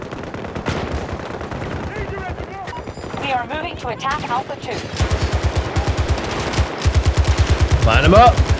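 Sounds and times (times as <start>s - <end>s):
M60 machine gun firing in a video game: 0.0s - 8.5s
speech: 3.3s - 5.5s, 7.8s - 8.5s.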